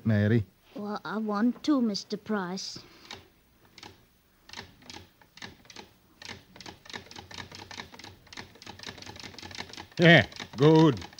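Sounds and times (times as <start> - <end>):
speech: 0.1 - 3.0, 10.0 - 11.1
sewing machine stitching a single thread chain: 4.5 - 11.1.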